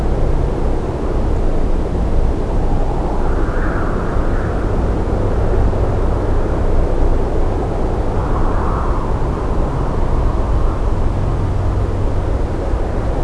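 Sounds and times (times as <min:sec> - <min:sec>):
ambient night soundscape: 0:00.0 - 0:13.2.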